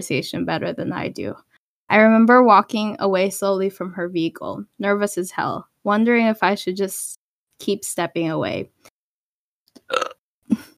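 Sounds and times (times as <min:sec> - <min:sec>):
speech: 0:00.0 - 0:08.8
loud rumbling burps: 0:09.8 - 0:10.2.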